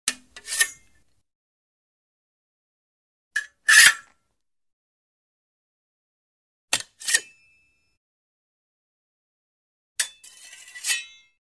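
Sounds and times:
rapier drawn from sheath with light scrape: 0:00.1 - 0:01.0, 0:03.4 - 0:04.1, 0:06.7 - 0:07.4, 0:10.0 - 0:11.3.

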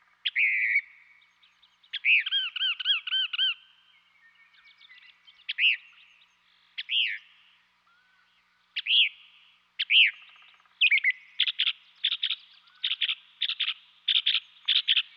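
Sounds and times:
northern mockingbird singing in Western North America: 0:00.2 - 0:07.3, 0:08.8 - 0:15.1.

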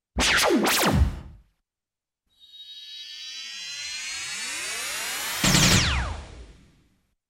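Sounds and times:
power shot: 0:00.2 - 0:01.4, 0:05.4 - 0:06.4.

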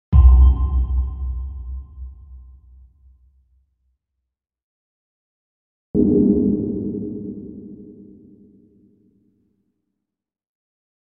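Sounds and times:
tonal sonar ping: 0:00.1 - 0:02.6, 0:06.0 - 0:08.4
bass impact: 0:00.2 - 0:02.4.

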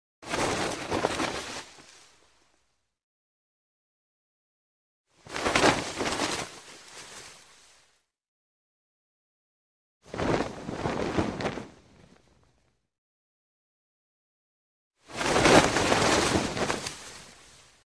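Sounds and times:
cloth flag flapping: 0:00.2 - 0:02.2, 0:05.2 - 0:07.9, 0:10.1 - 0:12.6, 0:15.0 - 0:17.8.

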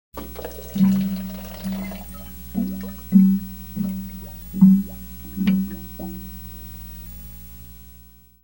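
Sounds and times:
water bubbling in a sink: 0:00.2 - 0:06.5.

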